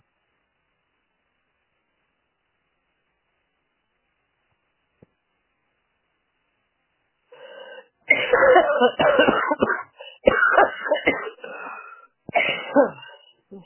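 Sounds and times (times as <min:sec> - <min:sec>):
soft intake of breath: 0:07.4 - 0:08.0, 0:10.0 - 0:10.3, 0:11.4 - 0:13.6
person sneezing from allergies: 0:07.4 - 0:13.6.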